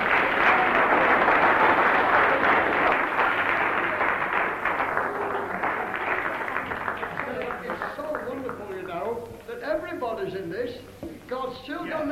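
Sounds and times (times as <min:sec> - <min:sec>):
audience clapping: 0:00.0 - 0:09.6.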